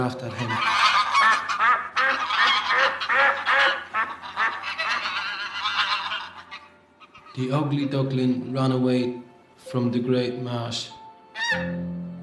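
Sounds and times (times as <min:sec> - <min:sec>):
speech: 0:00.0 - 0:00.8, 0:07.4 - 0:11.9
wild geese honking: 0:00.0 - 0:07.7, 0:11.4 - 0:11.8.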